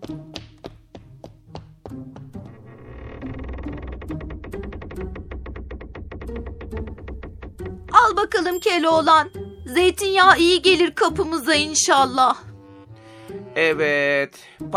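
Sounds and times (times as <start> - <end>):
door hinges creaking as the door is worked back and forth: 2.2 - 9.5
speech: 8.1 - 12.4, 13.6 - 14.7.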